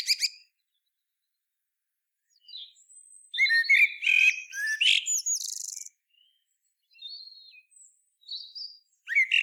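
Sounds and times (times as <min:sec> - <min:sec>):
common blackbird warbling and twittering: 0:00.0 - 0:00.4, 0:02.3 - 0:09.4.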